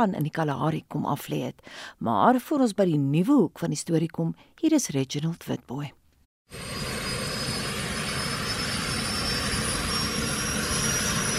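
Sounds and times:
speech: 0.0s - 6.8s
jet-powered supersonic car with EJ200 jet engine roaring: 6.5s - 11.3s.

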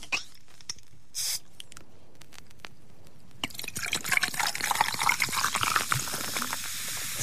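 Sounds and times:
fizzy drink being poured with a crackling hiss of bubbles: 3.4s - 7.2s.

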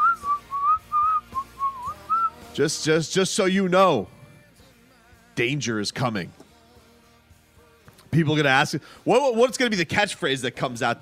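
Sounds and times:
person whistling a short bouncy tune: 0.0s - 2.6s
speech: 2.6s - 4.2s, 5.4s - 6.4s, 8.2s - 11.0s.

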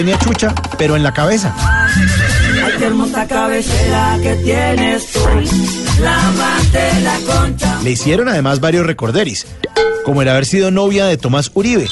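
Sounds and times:
speech: 0.0s - 11.9s
horse neighing with long wavering whinny: 1.6s - 3.4s
steady pulsing low musical backing: 2.9s - 8.4s.

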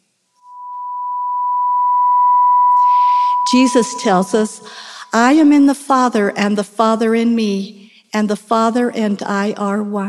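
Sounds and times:
steady pure electronic sine wave tone: 0.4s - 5.5s
speech: 3.5s - 10.0s.

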